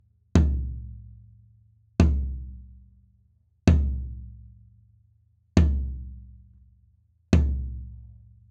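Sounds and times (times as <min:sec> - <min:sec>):
floor tom drum recorded with an MD 421 Kompakt microphone: 0:00.4 - 0:00.9, 0:02.0 - 0:02.6, 0:03.7 - 0:04.3, 0:05.6 - 0:06.1, 0:07.4 - 0:08.0.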